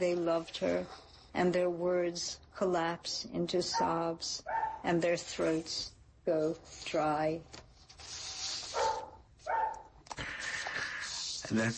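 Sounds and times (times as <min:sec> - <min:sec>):
speech: 0:00.0 - 0:07.6, 0:11.5 - 0:11.7
dog barking: 0:03.7 - 0:04.9, 0:08.7 - 0:09.9
steady hiss: 0:04.2 - 0:11.7.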